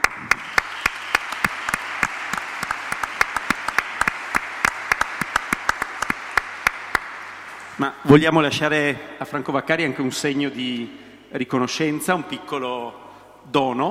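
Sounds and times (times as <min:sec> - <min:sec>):
audience applauding at an evening gathering in Trieste Italy: 0:00.0 - 0:07.8
sharper individual claps: 0:00.0 - 0:07.8
speech: 0:07.8 - 0:13.8.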